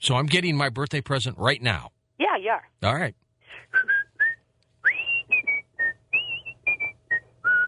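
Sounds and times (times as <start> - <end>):
speech: 0.0 - 3.9
person whistling a cheerful bouncy TV theme tune: 3.7 - 7.6.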